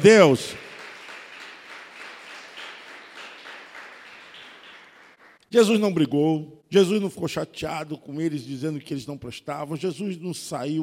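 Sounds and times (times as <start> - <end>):
speech: 0.0 - 0.6, 5.5 - 10.8
crowd applauding: 0.0 - 5.4.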